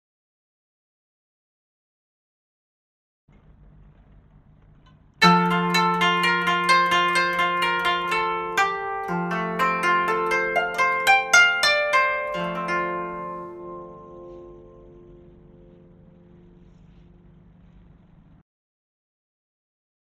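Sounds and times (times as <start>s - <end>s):
koto: 5.2s - 17.8s.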